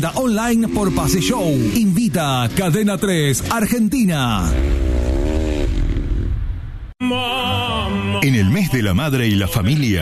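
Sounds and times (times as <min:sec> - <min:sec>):
speech: 0:00.0 - 0:04.9, 0:07.0 - 0:10.0
450 cc racing motorcycle engines revving on a dirt oval track: 0:00.0 - 0:06.4.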